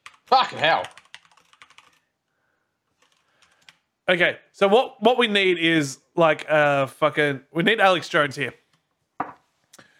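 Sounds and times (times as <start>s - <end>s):
rapid clacking of a computer keyboard: 0.0s - 2.1s, 2.9s - 3.9s
speech: 0.3s - 1.0s, 4.1s - 8.6s.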